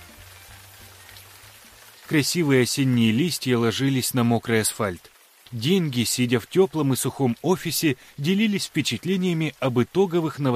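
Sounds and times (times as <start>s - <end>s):
steady rain falling outside: 0.0s - 10.5s
speech: 2.1s - 10.5s.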